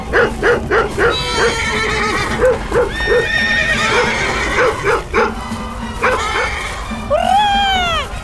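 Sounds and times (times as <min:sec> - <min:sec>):
dog barking at horses: 0:00.0 - 0:01.6, 0:02.2 - 0:05.4, 0:06.0 - 0:06.6
frightened horses neighing and whinnying: 0:00.0 - 0:08.2.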